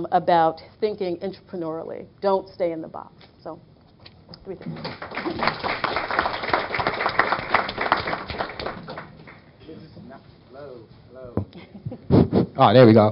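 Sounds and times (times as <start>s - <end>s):
speech: 0.0s - 3.7s, 4.4s - 6.1s, 10.6s - 13.1s
audience applause: 4.8s - 9.5s.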